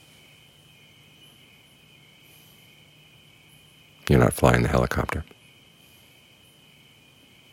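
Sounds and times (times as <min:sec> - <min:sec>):
high-pitched chorus of crickets trilling: 0:00.0 - 0:07.5
speech: 0:04.1 - 0:05.4.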